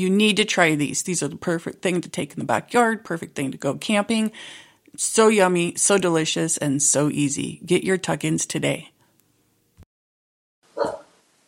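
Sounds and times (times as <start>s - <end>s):
speech: 0.0s - 8.9s
dog bark: 10.8s - 11.1s.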